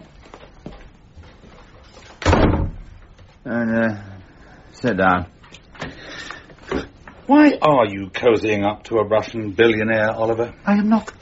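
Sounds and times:
soft room noise: 0.0s - 11.2s
door shutting with a solid thud: 2.2s - 3.0s
speech: 3.4s - 4.1s, 4.8s - 5.4s, 7.3s - 11.2s.

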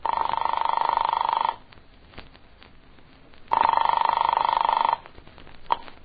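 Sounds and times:
old rotary-dial telephone ringing on the line: 0.0s - 1.6s, 3.5s - 5.0s.

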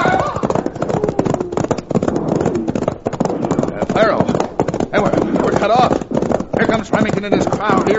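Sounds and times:
loud shouting voices: 0.0s - 1.6s
horses galloping away in a Western chase scene: 0.0s - 7.9s
speech: 7.2s - 7.9s.

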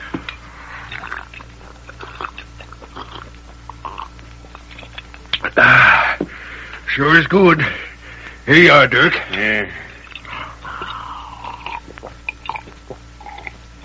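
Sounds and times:
person gulping water from a canteen: 0.9s - 6.0s, 10.1s - 13.8s
speech: 7.0s - 7.8s, 8.5s - 9.9s.

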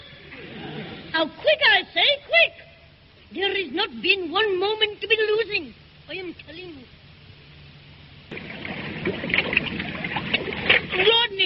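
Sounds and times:
speech: 1.2s - 2.6s, 3.3s - 7.0s, 9.0s - 9.6s, 11.0s - 11.4s
water lapping and splashing around a small moving boat: 8.3s - 11.4s.

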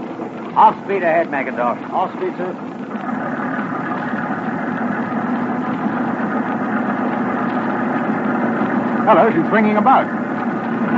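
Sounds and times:
motor torpedo boat engine droning: 0.0s - 10.9s
speech: 0.6s - 3.1s, 9.1s - 10.2s.

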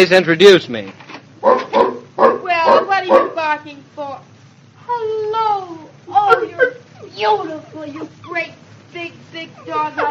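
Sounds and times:
speech: 0.0s - 1.6s, 2.2s - 4.3s, 4.9s - 10.0s
large dog barking and yelping: 1.4s - 3.4s.

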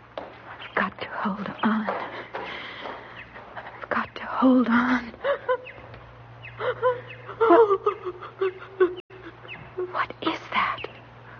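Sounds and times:
speech: 1.2s - 2.0s, 4.4s - 5.1s
person sobbing: 5.0s - 5.6s, 6.6s - 10.0s.

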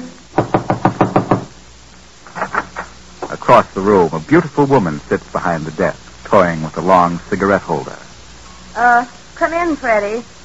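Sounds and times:
knocking on a door marked manager in a crowded cafe: 0.4s - 1.5s
speech: 3.5s - 8.0s, 8.8s - 10.3s.

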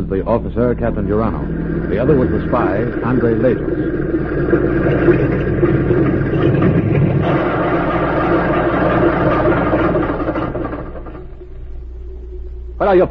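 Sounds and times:
speech: 0.0s - 7.7s, 12.8s - 13.0s
small plane engine idling after landing on a small field: 0.0s - 12.0s.

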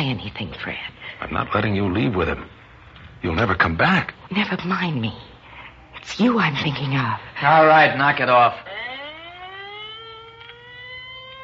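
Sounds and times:
speech: 0.0s - 2.6s, 3.2s - 5.3s, 6.0s - 8.8s
ambulance siren wailing: 7.4s - 11.4s.

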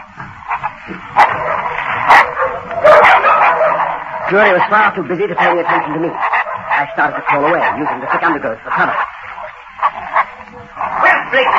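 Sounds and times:
several dogs snarling and yelping while attacking a man: 0.0s - 11.5s
speech: 0.8s - 2.7s, 4.3s - 9.1s.

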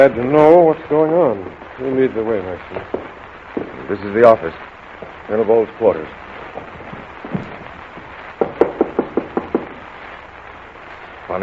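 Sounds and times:
speech: 0.0s - 7.5s
knocking on a wooden door: 8.4s - 9.8s.

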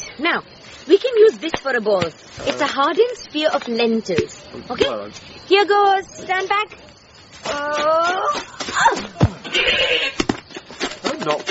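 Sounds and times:
speech: 0.2s - 10.2s, 11.2s - 11.4s
thumps and scuffling noise: 0.7s - 5.3s, 6.4s - 11.4s
goat bleating: 9.4s - 10.2s.

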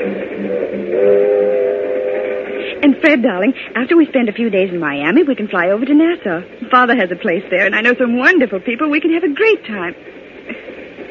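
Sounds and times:
train to Miami rolling along with a constant rumble: 0.0s - 11.0s
steady train whistle tone: 0.1s - 2.8s
speech: 2.8s - 10.6s.

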